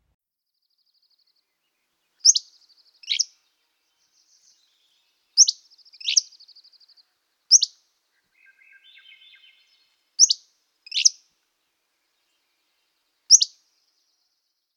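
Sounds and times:
Hammond's flycatcher song: 2.2s - 3.4s, 4.0s - 6.9s, 7.5s - 7.8s, 8.4s - 11.2s, 13.3s - 13.6s.

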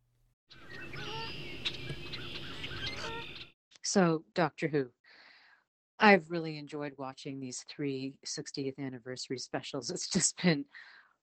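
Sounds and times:
dense chorus of bird calls: 0.5s - 3.5s
nasal honking and squawking cries: 0.9s - 3.4s
speech: 3.9s - 5.0s, 6.0s - 11.0s.

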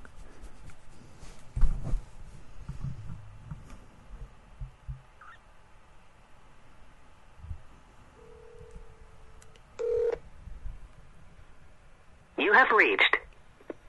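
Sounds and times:
soft rumble and clatter: 0.0s - 5.2s, 7.3s - 12.4s
telephone ringback-style tone on speakerphone: 8.2s - 9.0s, 9.8s - 10.2s
speech: 12.6s - 13.1s.

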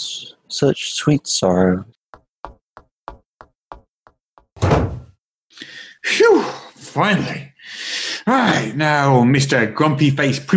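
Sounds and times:
speech: 0.6s - 2.0s, 6.1s - 10.5s
quick evenly spaced thuds: 2.1s - 5.2s
door slamming shut: 4.6s - 5.2s.

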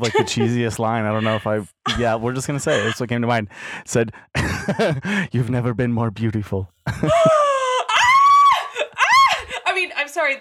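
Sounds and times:
laughter: 0.0s - 3.4s, 4.4s - 5.5s, 6.8s - 9.6s
speech: 0.0s - 7.4s
person screaming in high-pitched sustained bursts: 7.8s - 9.4s.

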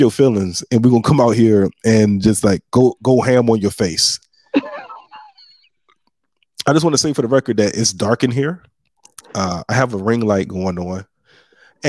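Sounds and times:
speech: 0.0s - 4.8s, 6.7s - 8.7s, 9.3s - 11.1s
laughter: 4.6s - 5.7s
heavy congested breathing through a stuffy nose: 11.2s - 11.8s.

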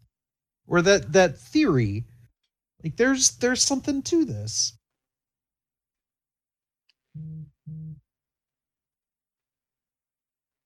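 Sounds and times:
speech: 0.7s - 2.1s, 2.8s - 4.8s
phone vibrating against a hard surface: 7.2s - 8.1s.

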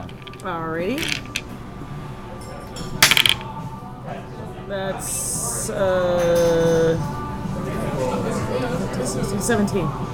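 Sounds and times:
dice tumbling across a hard tabletop in a tabletop game: 0.0s - 1.5s, 3.0s - 3.5s
speech: 0.4s - 1.4s, 4.1s - 7.2s, 8.5s - 10.1s.

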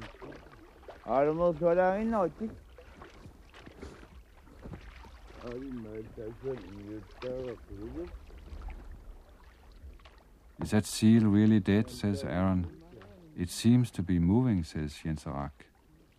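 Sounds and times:
oar splashing in water from small boat near ice edge: 0.0s - 16.1s
wind outdoors: 0.0s - 16.1s
speech: 1.1s - 2.6s, 5.5s - 8.2s, 10.6s - 12.8s, 13.4s - 15.7s.

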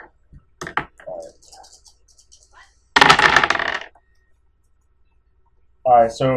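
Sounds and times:
dice rolled in a tabletop role-playing game rattling on a hard surface: 0.6s - 4.0s
speech: 5.9s - 6.3s.

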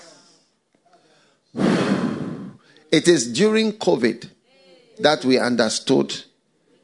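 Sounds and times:
loud forceful exhale: 1.6s - 2.7s
speech: 2.9s - 4.4s, 5.0s - 6.3s.

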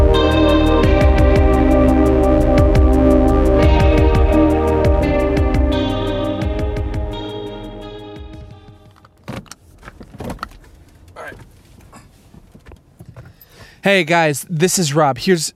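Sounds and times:
sustained musical tones: 0.0s - 9.0s
soft rustling inside a parked car: 9.6s - 13.8s
speech: 13.9s - 15.5s.

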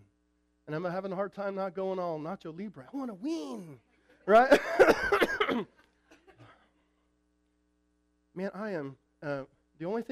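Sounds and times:
speech: 0.7s - 5.8s, 8.4s - 10.1s
rough coughing: 4.4s - 6.8s
quieter throat sounds: 6.1s - 6.8s.

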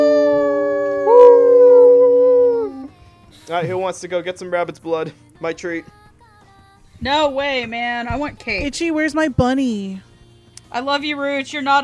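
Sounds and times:
people howling like wolves: 0.0s - 2.9s
speech: 3.5s - 6.0s, 7.0s - 10.1s, 10.7s - 11.8s.

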